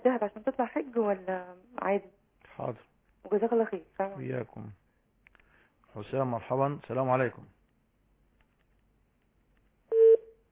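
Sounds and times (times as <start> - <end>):
speech: 0.1 - 2.8, 6.1 - 7.6
mid-pitched telephone beep on a phone line after a dropped call: 9.9 - 10.2.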